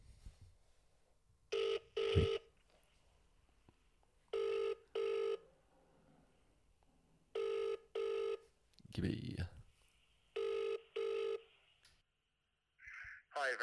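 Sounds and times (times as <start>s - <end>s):
telephone ringing tone in double bursts: 1.5s - 2.5s, 4.3s - 5.5s, 7.4s - 8.4s, 10.4s - 11.5s
speech: 2.2s - 2.4s, 9.0s - 9.6s.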